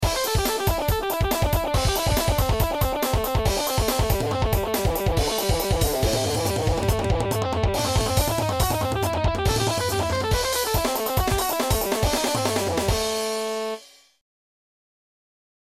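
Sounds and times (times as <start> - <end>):
eight-bar blues lick: 0.0 - 13.7.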